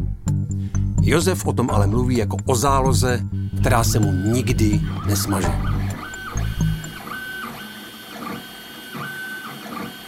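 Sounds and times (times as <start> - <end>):
speech: 1.0 - 5.7
3D printer stepper motors whining in rising and falling sweeps: 3.5 - 10.0.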